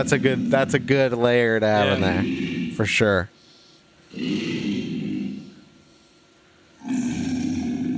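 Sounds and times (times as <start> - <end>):
alligator low-frequency growling: 0.0 - 1.1, 1.8 - 2.9, 4.1 - 5.6, 6.8 - 7.9
speech: 0.0 - 3.4, 4.1 - 4.6.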